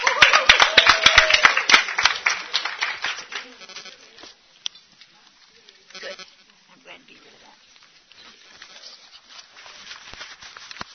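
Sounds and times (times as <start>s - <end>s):
crowd applause with many hands clapping: 0.0s - 4.0s.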